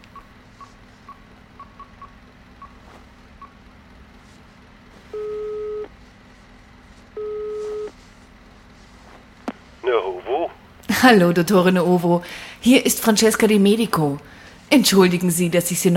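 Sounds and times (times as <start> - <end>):
telephone ringing tones: 5.0 - 5.9, 7.2 - 8.0
telephone dialing beeps: 5.1 - 5.9, 7.2 - 7.9
speech: 11.0 - 15.9.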